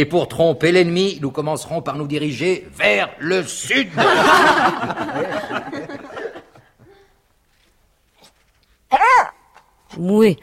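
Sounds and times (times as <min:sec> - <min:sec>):
speech: 0:00.0 - 0:06.1, 0:10.0 - 0:10.4
laughter: 0:03.8 - 0:06.9
dog yelping: 0:08.9 - 0:09.6.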